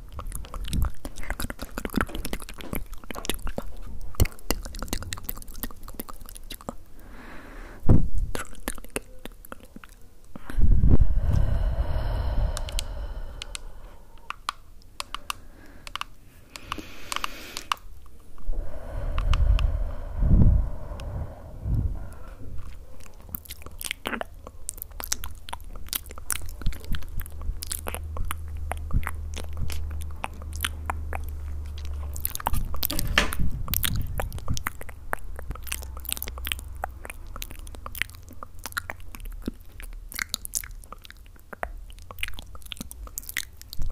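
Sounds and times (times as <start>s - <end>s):
rapid mouth clicks: 0.0s - 6.8s, 8.0s - 43.9s
mouth chewing and crunching: 0.0s - 6.9s, 8.2s - 10.6s, 22.5s - 43.9s.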